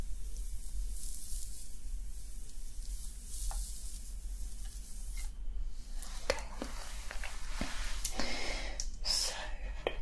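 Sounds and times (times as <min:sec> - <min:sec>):
crisp scratching and crackling strokes on scalp: 0:00.0 - 0:08.1
soft hissing sprays on scalp: 0:00.0 - 0:09.9.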